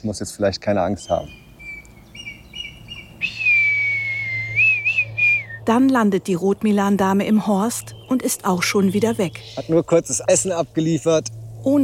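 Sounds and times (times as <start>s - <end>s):
speech: 0.0s - 1.4s, 5.7s - 11.8s
man whistling to communicate with red kites: 3.2s - 5.6s.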